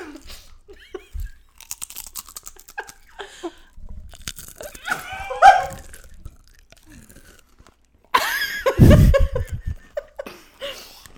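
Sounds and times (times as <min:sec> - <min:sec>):
brief laughter and chuckling: 0:00.0 - 0:01.4, 0:04.7 - 0:05.9, 0:08.2 - 0:10.4
crunching organic yellow corn tortilla chips: 0:00.0 - 0:08.5.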